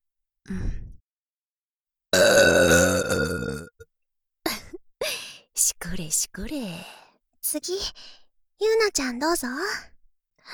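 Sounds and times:
speech: 0:00.5 - 0:00.9, 0:06.1 - 0:09.9
long loud croaking burp: 0:02.1 - 0:03.8.

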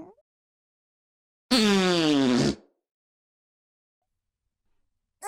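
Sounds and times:
voice imitating greasy fart noises: 0:01.5 - 0:02.7.

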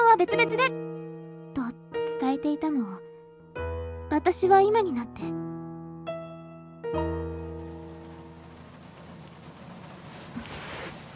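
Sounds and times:
speech: 0:00.2 - 0:00.8, 0:02.3 - 0:03.1, 0:04.2 - 0:05.4, 0:06.9 - 0:07.3
rain pattering: 0:07.1 - 0:11.1.

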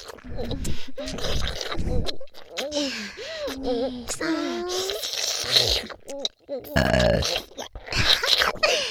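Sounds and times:
heavy breathing: 0:00.4 - 0:02.1, 0:02.6 - 0:04.7, 0:08.0 - 0:08.8
person burping with low croaky bending pitch: 0:06.7 - 0:07.4.

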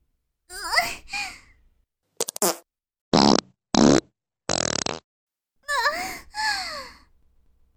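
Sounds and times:
fart sounds poured into a goldfish bowl: 0:02.2 - 0:05.0.

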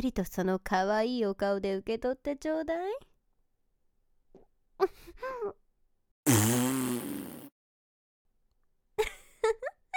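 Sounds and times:
speech: 0:00.0 - 0:03.1, 0:04.8 - 0:05.6
loud rasping sputtering fart: 0:06.2 - 0:07.6.

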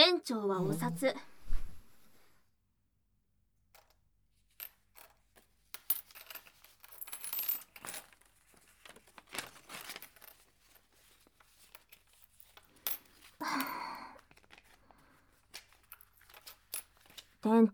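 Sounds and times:
speech: 0:00.2 - 0:01.4, 0:17.5 - 0:17.7
coins clinking and sliding as counted by hand: 0:04.6 - 0:17.7.

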